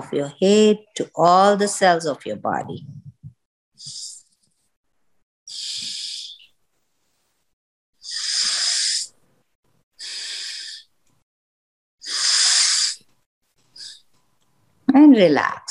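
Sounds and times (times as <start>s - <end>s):
speech: 0.0s - 3.0s, 15.0s - 15.6s
deep breathing in and out: 5.5s - 6.5s, 8.0s - 9.2s, 10.0s - 11.0s, 12.0s - 13.1s.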